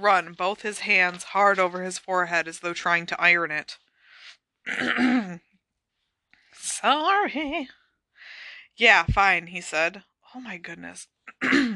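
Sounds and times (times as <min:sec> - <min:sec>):
speech: 0:00.0 - 0:03.8, 0:04.7 - 0:05.5, 0:06.6 - 0:07.8, 0:08.8 - 0:11.7
rough voiced throat clearing from a tickly urge to cough: 0:04.7 - 0:05.4
short intake of breath: 0:08.2 - 0:08.7.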